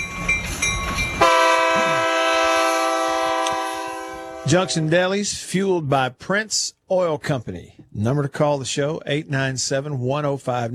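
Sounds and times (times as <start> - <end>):
low rumbling rail noise: 0.0 - 5.4
train horn blast with stacked harmonic tones: 1.2 - 4.9
speech: 4.5 - 10.7.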